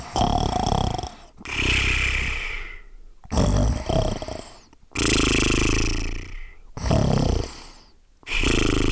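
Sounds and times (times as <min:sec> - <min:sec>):
creature snoring asleep on a tree branch in the sun: 0:00.0 - 0:08.9.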